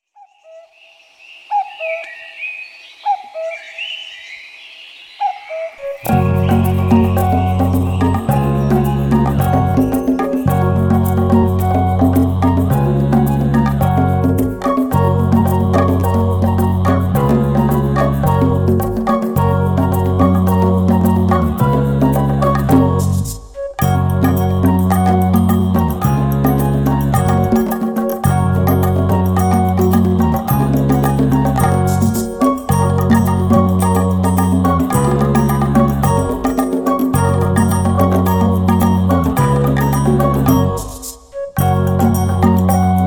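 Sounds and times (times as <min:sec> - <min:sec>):
distant forest instrumental music: 0:05.8 - 0:43.0.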